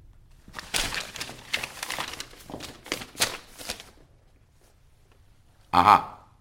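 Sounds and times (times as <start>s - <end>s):
sheet of paper with written music handed over and unfolded on a theatre stage: 0.3s - 4.8s
speech: 5.8s - 6.1s.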